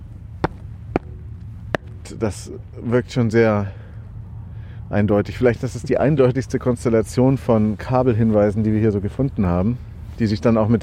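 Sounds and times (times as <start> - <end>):
footsteps landing on a hollow beach manhole cover: 0.0 - 2.5
low steady hum: 0.0 - 10.8
speech: 2.1 - 3.8, 4.9 - 10.8.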